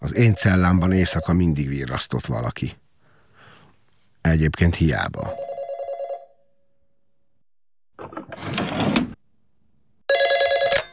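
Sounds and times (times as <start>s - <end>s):
speech: 0.1s - 2.8s, 4.2s - 5.5s
telephone ringing: 0.2s - 1.5s, 5.3s - 6.3s, 10.1s - 10.9s.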